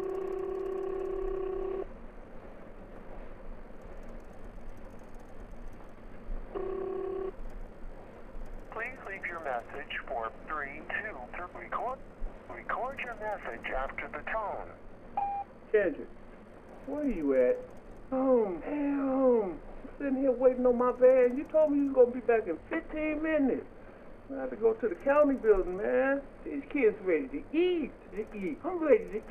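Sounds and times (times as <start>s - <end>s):
telephone ringing: 0.0s - 1.9s, 6.5s - 7.3s
low noise: 0.0s - 29.2s
speech: 9.8s - 14.9s, 15.7s - 16.2s, 16.8s - 29.2s.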